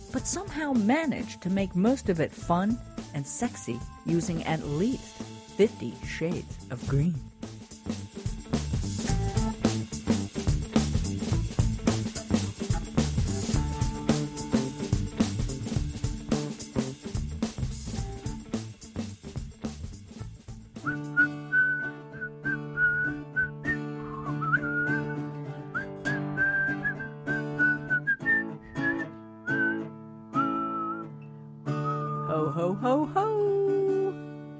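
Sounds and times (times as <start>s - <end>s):
speech: 0.1s - 8.0s
strummed guitar: 4.2s - 34.5s
whistled Christmas holiday melody: 20.8s - 33.1s.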